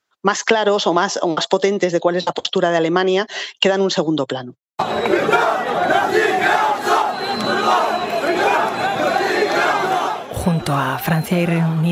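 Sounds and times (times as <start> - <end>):
speech: 0.2 - 6.3, 10.5 - 11.9
large pro-Palestinian protest crowd chanting in a street: 4.8 - 11.6.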